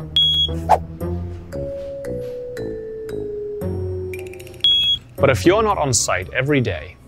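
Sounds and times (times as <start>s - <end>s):
gas station underground fuel tank monitor electronic alarm beep: 0.0s - 0.6s, 4.6s - 5.0s
soft music: 0.0s - 7.0s
speech: 0.5s - 1.2s, 5.2s - 7.0s.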